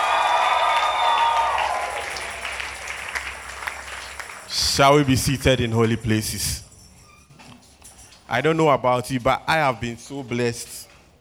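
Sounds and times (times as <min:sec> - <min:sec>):
audience cheering and shouting: 0:00.0 - 0:03.2
audience applauding: 0:00.0 - 0:05.8
speech: 0:04.8 - 0:06.6, 0:08.3 - 0:10.8.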